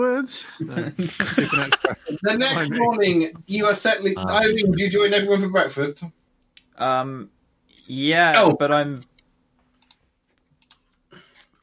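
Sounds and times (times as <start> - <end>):
speech: 0.0 - 6.2, 6.8 - 9.1
quiet hum: 0.0 - 11.6
laughter: 0.4 - 3.4, 4.2 - 4.9
soft computer keyboard typing: 8.9 - 11.6.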